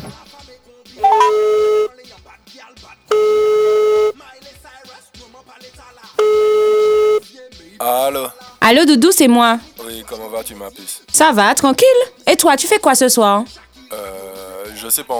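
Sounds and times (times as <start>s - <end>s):
telephone ringing tones while a call is being placed: 1.0s - 1.9s, 3.1s - 4.1s, 6.2s - 7.2s
speech: 8.9s - 14.2s, 14.8s - 15.1s.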